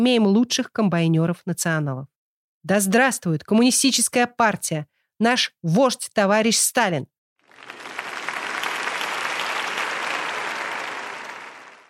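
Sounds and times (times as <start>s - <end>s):
speech: 0.0s - 7.9s
sustained applause from a large crowd: 7.4s - 11.8s.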